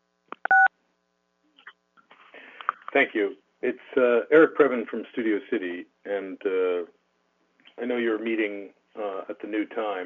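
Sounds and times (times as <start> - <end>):
telephone keypad tone dialed on a public-comment call line: 0.4 - 0.7
speech: 2.9 - 7.0, 7.8 - 10.0.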